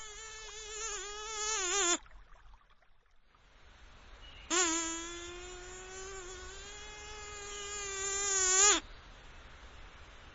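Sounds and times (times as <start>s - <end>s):
mosquito buzzing: 0.0s - 2.0s, 4.5s - 8.8s.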